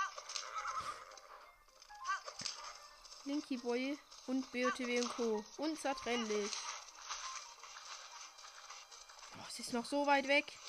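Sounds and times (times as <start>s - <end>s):
horse whinnying in a video game: 0.0s - 1.5s
horse hooves galloping in a video game: 0.0s - 10.6s
speech: 3.3s - 6.7s, 9.6s - 10.6s.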